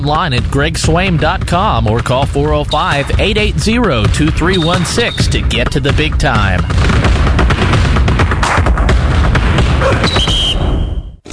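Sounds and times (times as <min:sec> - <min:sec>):
speech: 0:00.0 - 0:08.0, 0:09.8 - 0:10.4
fireworks exploding with popping and crackling: 0:04.6 - 0:10.2
high firework whistle: 0:09.8 - 0:11.2.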